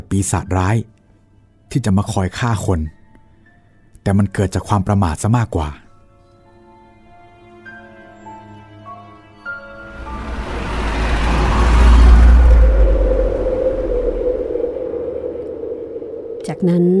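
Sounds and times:
speech: 0:00.1 - 0:01.0, 0:01.7 - 0:03.0, 0:04.0 - 0:05.8, 0:16.6 - 0:16.9
car engine rumble while slowing into a curve: 0:09.8 - 0:16.2
faint sustained tone: 0:09.8 - 0:16.9.

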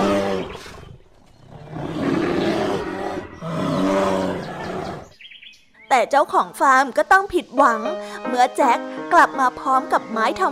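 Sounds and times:
large bear roaring in a forest: 0:00.0 - 0:05.2
speech: 0:06.0 - 0:10.5.

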